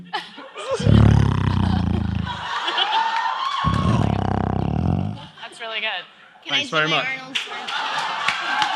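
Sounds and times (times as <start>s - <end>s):
laughter: 0.0s - 5.8s, 7.3s - 8.7s
person's voice imitating a lion roar into a microphone: 0.8s - 2.5s, 3.6s - 5.3s
speech: 6.0s - 7.4s.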